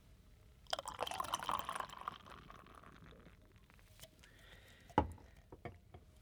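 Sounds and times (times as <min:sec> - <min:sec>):
premium ale pouring into a glass: 0:00.7 - 0:03.9.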